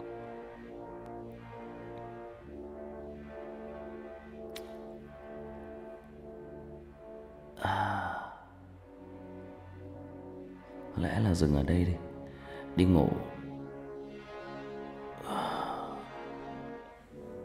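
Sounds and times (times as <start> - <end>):
low humming drone: 0.0 - 17.4
person yawning while reading aloud late at night: 7.6 - 8.5, 15.2 - 16.1
speech: 11.0 - 12.1, 12.8 - 13.3.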